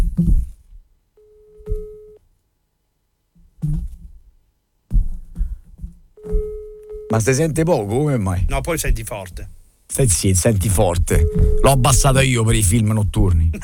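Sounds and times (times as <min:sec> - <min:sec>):
low noise: 0:00.0 - 0:13.6
telephone busy signal: 0:01.2 - 0:02.2, 0:06.2 - 0:07.3, 0:11.0 - 0:12.0
speech: 0:07.1 - 0:13.6.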